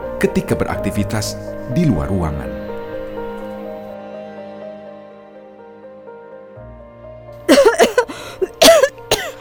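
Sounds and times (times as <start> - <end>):
speech: 0.2 - 2.6
woman wearing a face mask coughing harshly: 7.5 - 9.3.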